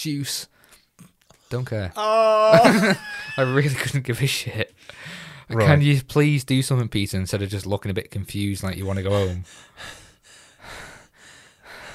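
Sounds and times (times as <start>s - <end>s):
speech: 0.0s - 10.0s
laughter: 2.4s - 4.0s
actor panting heavily: 4.8s - 5.5s, 9.1s - 11.9s.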